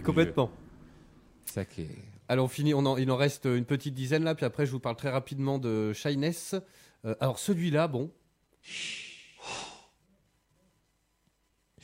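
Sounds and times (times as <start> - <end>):
speech: 0.0 - 0.6, 1.5 - 9.7
video game villager blowing puffs of breath: 8.6 - 10.0.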